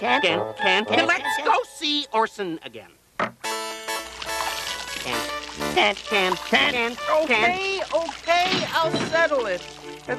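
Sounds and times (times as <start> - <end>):
speech: 0.0 - 3.3, 5.0 - 10.1
shower water spraying: 4.0 - 10.1.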